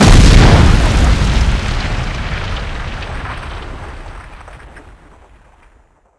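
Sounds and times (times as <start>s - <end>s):
damage boom: 0.0s - 3.5s.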